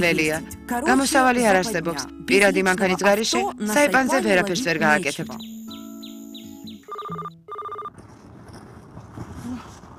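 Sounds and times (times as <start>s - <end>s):
speech: 0.0s - 5.6s
telephone ringing: 5.4s - 7.9s
noisy rustling noise: 7.5s - 9.9s.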